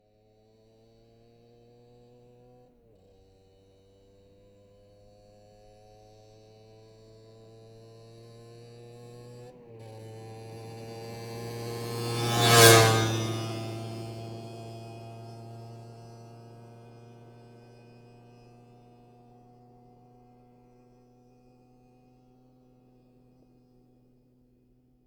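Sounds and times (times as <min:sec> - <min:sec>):
Keeway moped passing by: 0:07.8 - 0:18.8.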